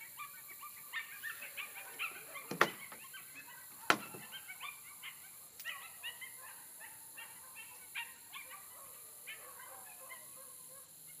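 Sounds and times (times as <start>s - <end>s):
several coyotes yipping: 0.0s - 11.1s
steady background hiss: 0.0s - 11.1s.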